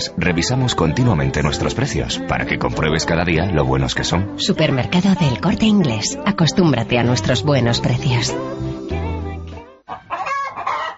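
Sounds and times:
speech: 0.0s - 8.6s
chicken clucking: 9.9s - 10.9s.

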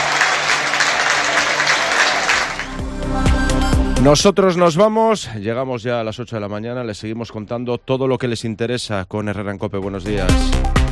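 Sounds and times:
large stadium crowd ovation applause: 0.0s - 2.8s
speech: 4.0s - 10.8s.

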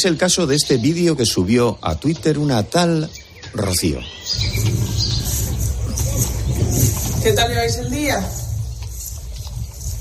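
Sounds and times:
speech: 0.0s - 5.2s, 7.2s - 8.4s
sheep moving about in a field: 0.9s - 9.9s
strong wind across an open field: 4.2s - 9.9s.

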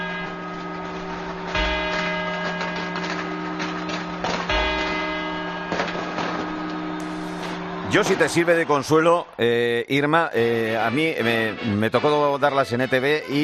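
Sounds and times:
clock tower bell chimes: 0.0s - 8.5s
speech: 7.9s - 13.4s.

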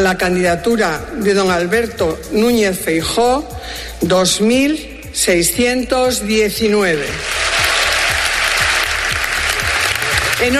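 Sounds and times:
speech: 0.0s - 7.6s, 10.4s - 10.5s
party congress crowd applauding a newly elected party president: 7.2s - 10.5s.

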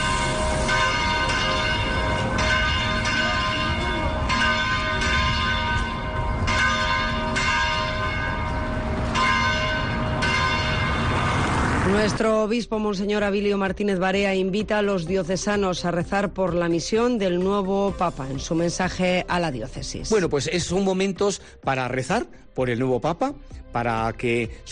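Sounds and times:
cathedral and church bells pealing in celebration in Osma-Soria Spain: 0.0s - 12.2s
speech: 12.0s - 24.6s.

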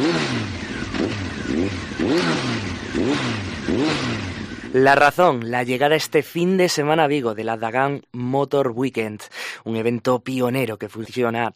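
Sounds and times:
car engine revving: 0.0s - 5.1s
speech: 4.8s - 11.5s.

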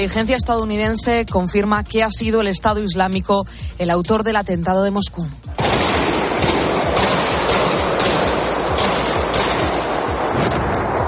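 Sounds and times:
speech: 0.0s - 5.6s
automatic weapons gunfire in a crowded concert hall: 5.6s - 10.8s.

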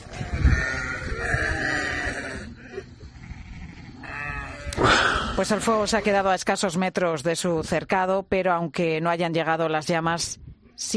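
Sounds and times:
herd of goats bleating: 0.0s - 4.8s
speech: 5.4s - 10.9s.

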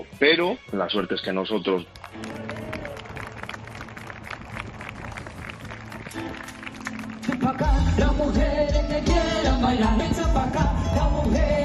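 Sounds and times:
speech: 0.2s - 2.4s, 7.3s - 11.6s
concert crowd applauding: 1.7s - 8.1s
loud live band with heavy bass: 6.1s - 11.6s.

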